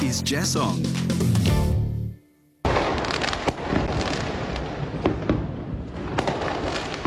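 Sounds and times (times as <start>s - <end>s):
speech: 0.1s - 1.3s
fireworks rumbling and exploding: 2.6s - 7.0s.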